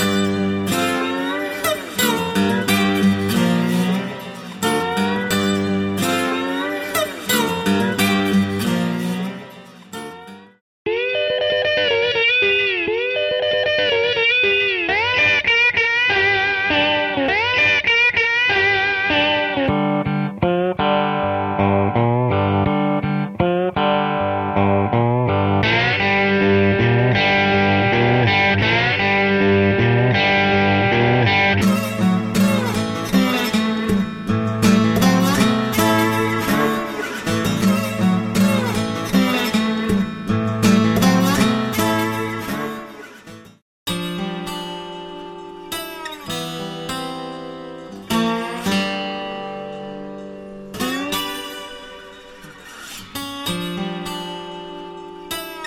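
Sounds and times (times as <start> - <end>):
slide guitar played with a bottleneck: 0.0 - 55.6.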